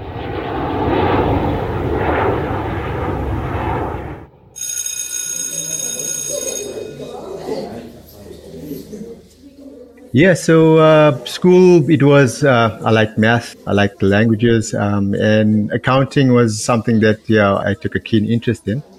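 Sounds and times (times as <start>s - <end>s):
airplane flying overhead: 0.0s - 4.6s
faint murmuring voices: 5.1s - 18.9s
speech: 10.2s - 18.9s.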